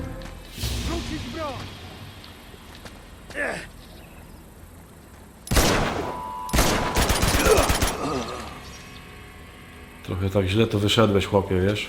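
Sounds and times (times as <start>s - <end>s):
speech: 1.1s - 1.8s, 3.3s - 3.8s, 10.1s - 11.8s
video game automatic gunfire: 5.5s - 8.1s.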